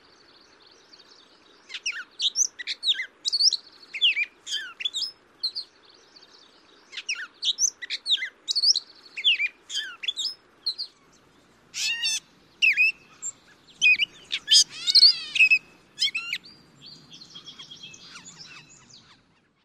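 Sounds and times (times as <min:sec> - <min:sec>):
grey catbird song: 0:00.0 - 0:19.6.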